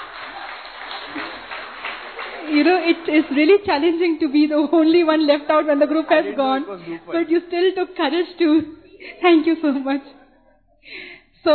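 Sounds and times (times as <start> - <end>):
audience applause: 0.0 - 4.0
speech: 2.5 - 10.2, 10.8 - 11.5.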